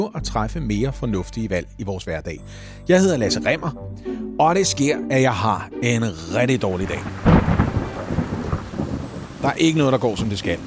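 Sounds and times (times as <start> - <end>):
speech: 0.0 - 7.3, 9.4 - 10.6
rain falling: 6.7 - 10.6
strong gusting wind: 6.8 - 10.6.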